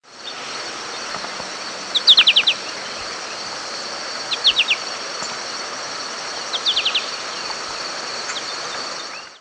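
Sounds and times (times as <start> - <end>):
steady background hiss: 0.0 - 9.4
American goldfinch flight calls from a bird in flight: 0.2 - 5.5, 6.4 - 8.8.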